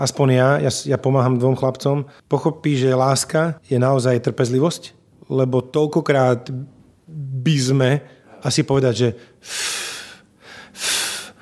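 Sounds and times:
speech: 0.0s - 9.8s
slow deep calming zen breath drawn in and let out: 9.2s - 11.3s.

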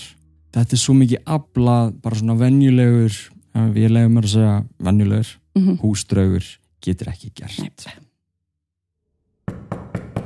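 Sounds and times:
speech: 0.6s - 8.0s
firm knocks on a door: 9.5s - 10.2s.

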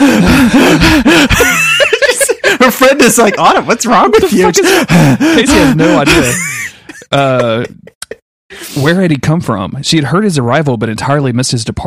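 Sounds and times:
person imitating racing breath with gasps and pants: 0.0s - 1.7s, 4.2s - 7.1s
laughter: 0.3s - 8.2s
speech: 3.0s - 11.8s.

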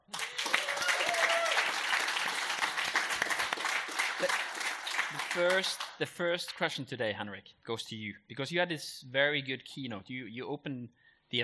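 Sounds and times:
audience applauding: 0.0s - 6.0s
speech: 5.4s - 11.4s.

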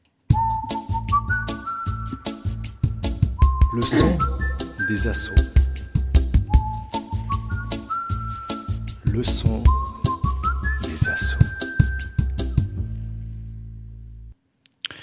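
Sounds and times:
whistled melody in a radio jingle: 0.3s - 12.8s
steady percussive beat in a radio jingle: 2.5s - 12.8s
speech: 3.7s - 5.5s, 9.2s - 9.8s, 11.1s - 11.4s
low hum: 3.8s - 4.9s, 12.7s - 14.4s
person speaking a radio jingle tagline: 3.8s - 5.6s.

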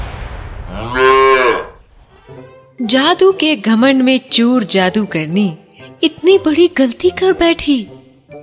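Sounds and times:
buffalo mooing: 0.8s - 1.8s
speech: 2.9s - 7.9s.

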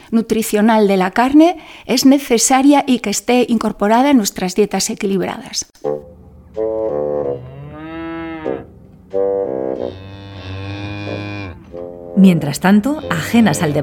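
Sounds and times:
speech: 0.1s - 7.1s, 12.2s - 13.8s
cows mooing: 6.4s - 13.8s.

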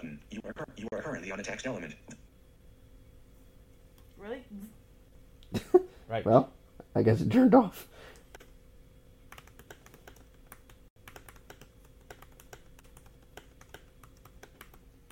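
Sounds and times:
faint low hum: 0.0s - 15.1s
speech: 0.8s - 2.1s, 5.5s - 8.0s
typing on clicky laptop keyboard: 9.3s - 15.1s.

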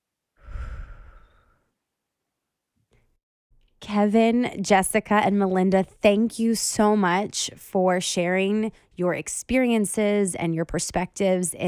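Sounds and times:
deep breath in and out: 0.4s - 1.7s
speech: 3.9s - 11.6s.

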